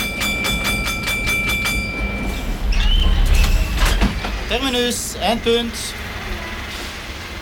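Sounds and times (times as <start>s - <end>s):
high metallic squeal of tram wheels on a curve: 0.0s - 4.8s
tram rumbling on rails from Brussels to Tervuren in Belgium: 0.0s - 7.4s
speech: 4.5s - 6.0s.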